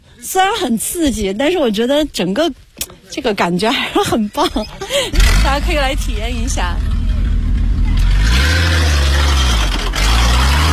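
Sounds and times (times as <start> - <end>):
speech: 0.2 - 6.9
car engine revving hard while turning sharp circles on sand: 4.9 - 10.7.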